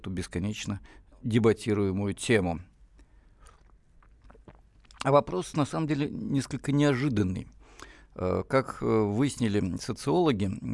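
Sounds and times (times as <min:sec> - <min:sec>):
speech: 0:00.0 - 0:02.7, 0:05.0 - 0:07.6, 0:08.2 - 0:10.7
sipping tea: 0:02.9 - 0:05.3
soft mouth sounds: 0:02.9 - 0:05.3.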